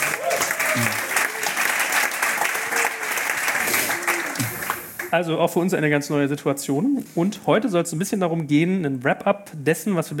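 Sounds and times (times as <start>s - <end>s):
live audience applause: 0.0s - 5.1s
speech: 0.8s - 1.0s, 5.1s - 10.1s.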